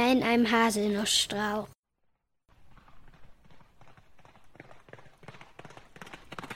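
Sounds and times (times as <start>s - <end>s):
speech: 0.0s - 1.8s
horses trotting with hooves clip-clopping: 2.5s - 6.5s.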